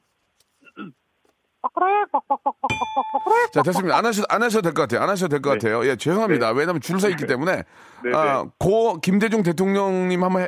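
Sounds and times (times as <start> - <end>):
person imitating a hen clucking: 1.6 - 4.0
speech: 1.8 - 10.4.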